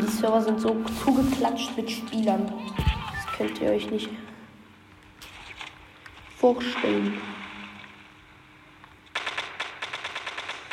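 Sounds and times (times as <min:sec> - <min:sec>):
speech: 0:00.2 - 0:04.3, 0:06.4 - 0:07.4
automatic gunfire from a weapon in an online video game: 0:09.1 - 0:10.7.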